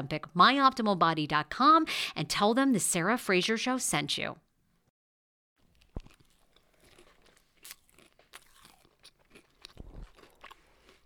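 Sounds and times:
speech: 0.0 - 4.4
crackly crinkly mouth sounds: 5.6 - 11.0
people chewing crunchy food: 5.6 - 11.0.

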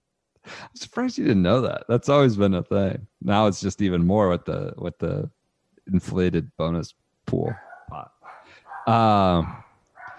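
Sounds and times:
speech: 0.7 - 8.1, 8.8 - 9.6
dog barking: 7.5 - 10.1.

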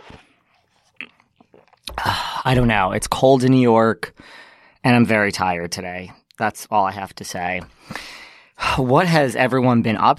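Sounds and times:
sipping coffee: 0.0 - 2.7
soft slurping and breathy mouth noises: 0.0 - 2.8
speech: 2.4 - 10.1.

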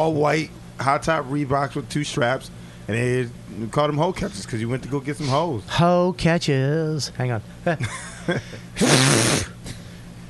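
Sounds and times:
speech: 0.0 - 9.5
person sneezing: 8.8 - 9.8.

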